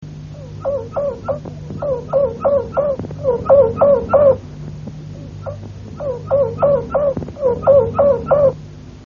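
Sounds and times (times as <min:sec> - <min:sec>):
low hum: 0:00.0 - 0:09.0
Harz roller canary singing: 0:00.2 - 0:08.7.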